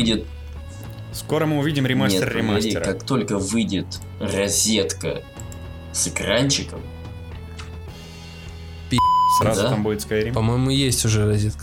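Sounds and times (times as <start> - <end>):
speech: 0.0 - 0.4, 1.1 - 5.4, 6.0 - 7.0, 8.9 - 11.6
Discord message notification beep: 9.0 - 9.6.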